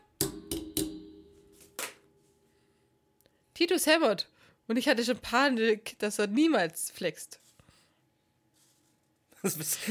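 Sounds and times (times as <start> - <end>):
hammer blows with metallic ring: 0.0 - 1.7
speech: 3.6 - 7.4, 9.4 - 9.9.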